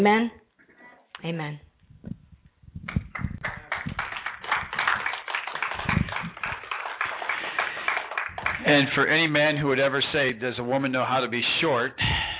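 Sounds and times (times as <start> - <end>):
speech: 0.0 - 0.4, 1.2 - 2.2, 8.6 - 12.1
audience applause: 3.1 - 9.5.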